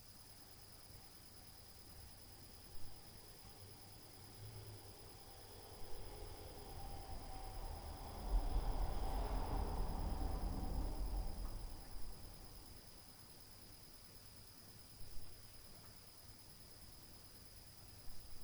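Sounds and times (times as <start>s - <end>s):
car street noise: 5.2s - 12.8s.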